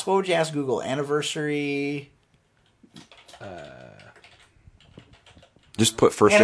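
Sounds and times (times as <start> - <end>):
speech: 0.0 - 2.2, 2.9 - 3.9, 5.8 - 6.4
soft keyboard clicks while typing a search: 2.2 - 5.9.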